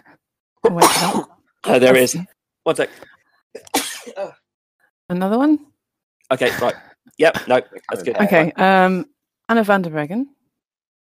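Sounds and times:
speech: 0.6s - 4.4s, 5.1s - 5.7s, 6.3s - 10.4s
sneeze: 0.7s - 1.4s, 3.6s - 4.4s.

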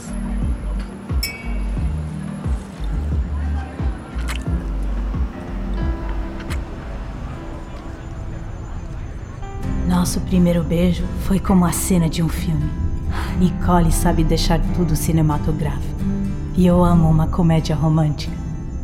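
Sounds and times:
voices and room noise: 0.0s - 12.5s
glasses clinking in a toast: 1.2s - 3.0s
speech: 10.0s - 12.8s, 13.4s - 18.4s.

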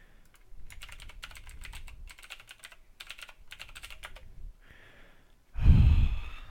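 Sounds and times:
computer keyboard typing: 0.2s - 4.3s
loud heavy exhale: 4.6s - 6.4s.

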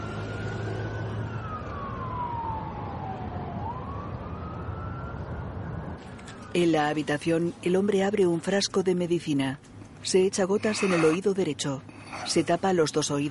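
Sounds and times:
ambulance siren wailing speeding along a busy street: 0.0s - 6.7s
steady rumble of traffic: 0.0s - 13.2s
speech: 6.5s - 13.2s.

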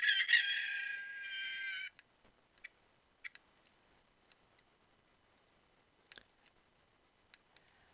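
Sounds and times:
small rooster crowing: 0.0s - 1.9s
faint clicks and ticks: 1.9s - 4.7s, 6.1s - 6.6s, 7.3s - 7.8s.

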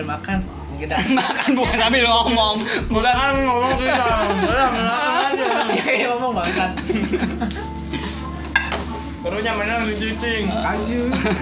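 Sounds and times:
speech: 0.0s - 7.8s, 9.2s - 11.4s
laughter: 0.9s - 8.3s, 11.0s - 11.4s
crinkly rustling of plastic being handled: 7.0s - 11.4s.

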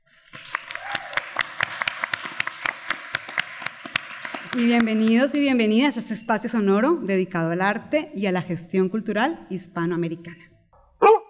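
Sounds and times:
small group clapping: 0.0s - 5.9s
speech: 4.5s - 10.5s.

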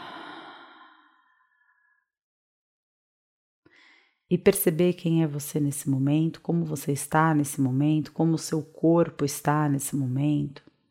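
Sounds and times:
deep breathing: 0.0s - 2.0s
speech: 4.3s - 10.7s.

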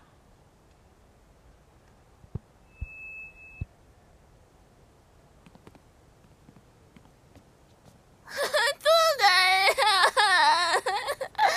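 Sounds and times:
person crying and sobbing: 8.3s - 11.5s
laughter: 9.7s - 11.5s.

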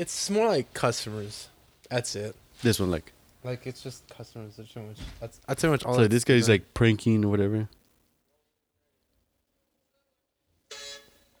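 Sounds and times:
speech: 0.0s - 7.8s
big truck horn honking: 10.7s - 11.2s.

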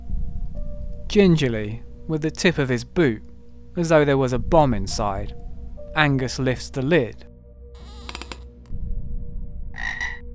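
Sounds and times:
speech: 1.1s - 5.4s, 6.0s - 7.3s
frog croaking in a toilet bowl: 9.7s - 10.2s.

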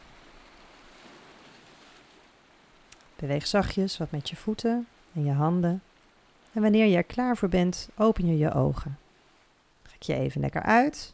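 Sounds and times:
ocean waves breaking on shore: 0.0s - 9.8s
speech: 3.2s - 5.9s, 6.6s - 9.0s, 10.0s - 11.1s.

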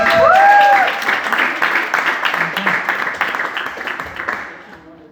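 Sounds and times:
person whooping: 0.0s - 1.0s
audience applause: 0.0s - 4.9s.

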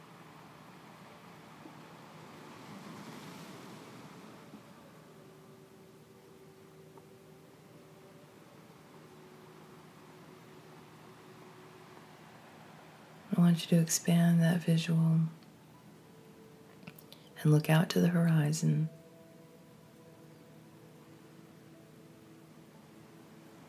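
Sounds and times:
ocean waves washing against a sandy shore: 0.0s - 16.6s
soft sustained humming drone: 0.0s - 23.6s
speech: 13.4s - 15.4s, 17.4s - 19.0s.

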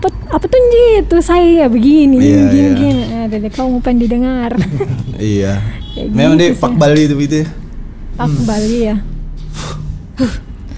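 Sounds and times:
speech: 0.0s - 7.6s, 8.2s - 10.5s
low steady hum: 0.0s - 10.7s
laughter: 4.5s - 5.4s
sharp intake of breath with a voiced catch: 8.4s - 10.6s.

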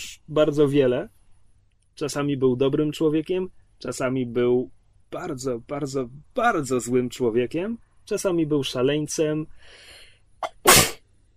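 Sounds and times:
speech: 0.3s - 1.2s, 2.0s - 10.8s
quick intake of breath: 9.6s - 10.1s
sharp loud sneeze: 10.4s - 11.0s.

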